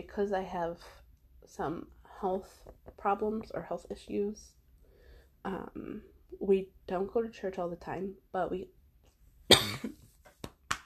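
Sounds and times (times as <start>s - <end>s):
speech: 0.1s - 4.6s, 5.4s - 8.8s, 9.5s - 10.0s
forceful raspy cough: 9.5s - 10.0s.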